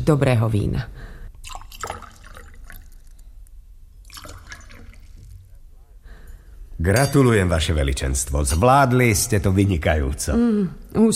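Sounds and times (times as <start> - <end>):
speech: 0.0 - 1.6, 6.8 - 11.1
fresh water poured from a jug into a vessel: 1.3 - 5.6.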